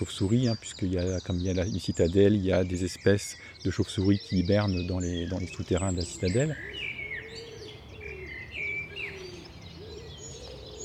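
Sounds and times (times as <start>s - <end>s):
speech: 0.0s - 6.8s
other small birds chirping and trilling: 0.0s - 10.8s
common wood pigeon cooing: 3.8s - 10.8s.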